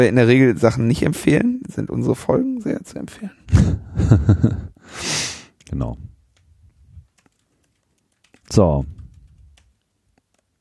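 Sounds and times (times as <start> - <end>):
speech: 0.0 - 6.1, 8.5 - 9.0
laughter: 3.5 - 4.8
typing on a computer keyboard: 5.5 - 10.5.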